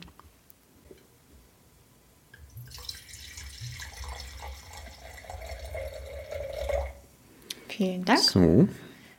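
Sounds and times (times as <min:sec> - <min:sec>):
red wine poured from a bottle into a glass: 0:02.4 - 0:07.1
speech: 0:07.8 - 0:08.8.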